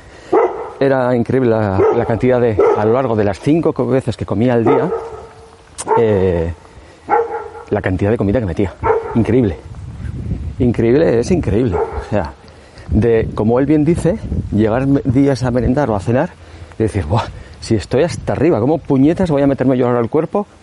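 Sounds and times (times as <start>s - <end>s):
dog barking and yipping: 0.3s - 0.8s, 1.7s - 3.1s, 4.6s - 6.2s, 7.1s - 7.8s, 8.8s - 9.6s, 11.6s - 12.2s
speech: 0.8s - 5.2s, 5.9s - 6.6s, 7.7s - 9.7s, 10.6s - 20.6s.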